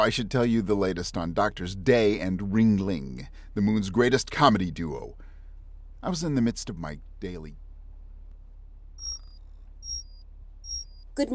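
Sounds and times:
speech: 0:00.0 - 0:05.2, 0:06.0 - 0:07.6, 0:11.2 - 0:11.3
low hum: 0:00.2 - 0:11.3
electronic internal conduction alarm chime tones: 0:09.0 - 0:11.0.

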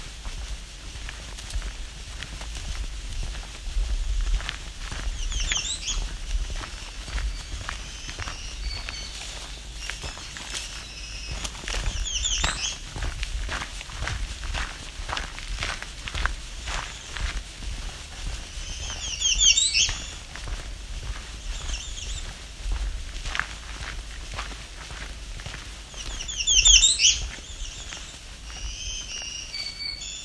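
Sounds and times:
crunching footsteps on a forest trail: 0:00.0 - 0:30.2
black-throated green warbler singing: 0:02.7 - 0:30.2
American redstart singing: 0:04.0 - 0:13.2, 0:16.3 - 0:22.5, 0:25.6 - 0:30.2
winter wren singing: 0:04.1 - 0:13.0, 0:18.4 - 0:20.6, 0:21.3 - 0:22.4, 0:25.8 - 0:30.2.

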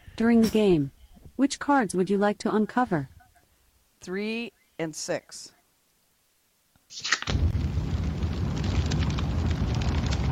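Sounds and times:
speech: 0:00.2 - 0:03.2, 0:04.0 - 0:05.6, 0:06.9 - 0:07.2
fireplace fire crackling and popping: 0:06.1 - 0:10.2.

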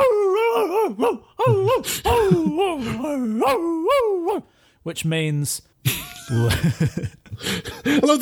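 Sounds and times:
person imitating a dog barking and yowling: 0:00.0 - 0:04.5
speech: 0:00.9 - 0:08.2
laughter: 0:01.5 - 0:03.2, 0:05.9 - 0:08.2.

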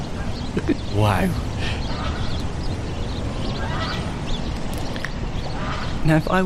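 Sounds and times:
heavy roar of road traffic: 0:00.0 - 0:06.4
duck quacking: 0:00.2 - 0:02.4, 0:03.4 - 0:04.2, 0:05.4 - 0:06.1
speech: 0:00.5 - 0:01.8, 0:06.0 - 0:06.4.

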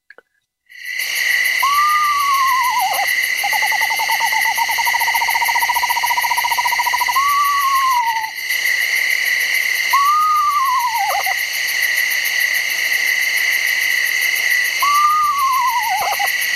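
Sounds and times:
chorus of crickets at night: 0:00.7 - 0:16.5
chorus of frogs at night: 0:00.7 - 0:16.5
eastern screech owl giving descending whinnies and trill: 0:01.6 - 0:08.4, 0:09.9 - 0:11.4, 0:14.8 - 0:16.4.

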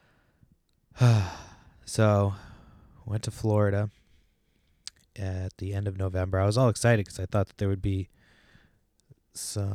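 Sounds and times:
loud breathy yawn: 0:01.0 - 0:01.7
speech: 0:01.0 - 0:02.4, 0:03.1 - 0:04.0, 0:05.2 - 0:08.2, 0:09.3 - 0:09.7.

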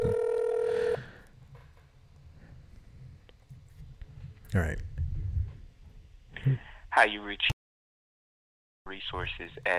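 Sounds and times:
electronic ring tone over a phone line to a broadcaster's office: 0:00.0 - 0:01.1
speech: 0:04.5 - 0:04.9, 0:06.4 - 0:07.5, 0:08.9 - 0:09.7.

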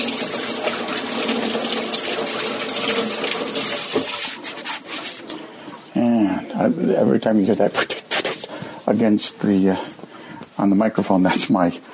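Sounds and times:
water running from a tap while rinsing: 0:00.0 - 0:05.4
speech: 0:06.6 - 0:08.0, 0:08.9 - 0:10.0, 0:10.6 - 0:11.9.

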